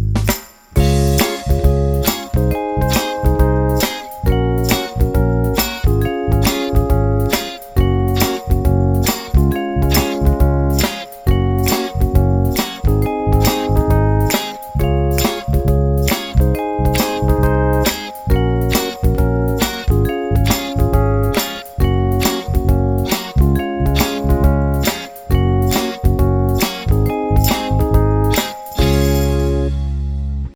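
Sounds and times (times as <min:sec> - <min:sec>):
Motown-style R&B groove production music: 0:00.2 - 0:30.5.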